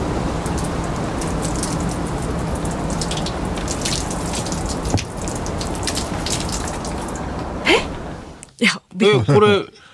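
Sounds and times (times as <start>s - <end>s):
water from watering can dripping off umbrella onto the ground: 0.1s - 8.0s
speech: 9.3s - 9.7s.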